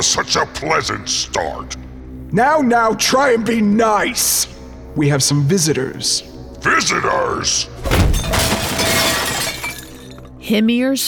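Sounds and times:
speech: 0.0s - 8.3s, 10.5s - 11.0s
ceramic pots smashing into pieces: 7.8s - 10.3s
smaller crockery pieces clattering: 7.8s - 10.3s.

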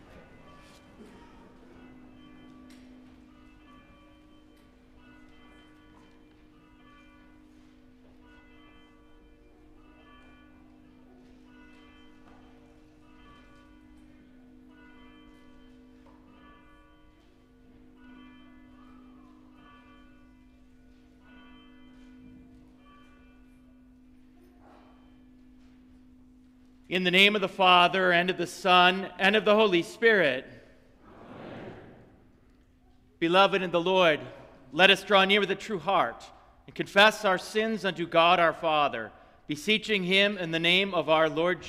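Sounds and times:
church bells ringing to call worship: 0.0s - 31.0s, 31.7s - 41.6s
speech: 26.9s - 30.6s, 33.2s - 41.6s.

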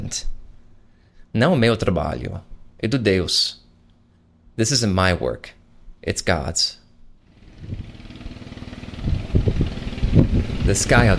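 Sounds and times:
speech: 0.1s - 0.3s, 1.4s - 3.6s, 4.6s - 6.8s, 10.2s - 11.1s
boat motor running with a low throbbing rumble: 7.4s - 11.1s.

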